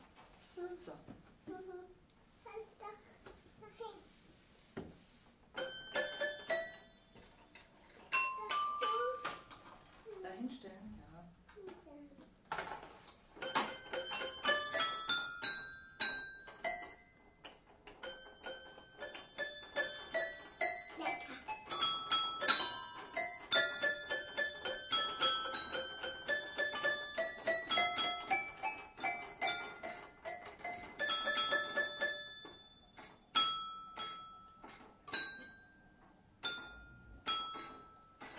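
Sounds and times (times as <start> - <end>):
speech: 0.8 - 4.2
toy piano that opens out of a small toy: 5.6 - 7.3, 8.1 - 9.6, 13.4 - 35.6, 36.4 - 38.3.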